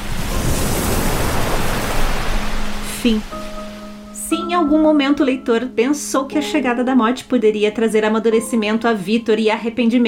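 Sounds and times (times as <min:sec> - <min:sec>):
ocean surf rushing: 0:00.0 - 0:04.6
speech: 0:03.0 - 0:03.4, 0:04.3 - 0:10.0.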